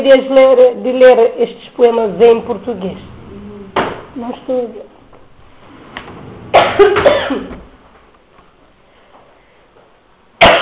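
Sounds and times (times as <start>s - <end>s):
speech: 0.0s - 3.1s, 4.2s - 4.9s, 6.6s - 7.6s
person coughing harshly: 6.5s - 7.6s, 10.4s - 10.6s.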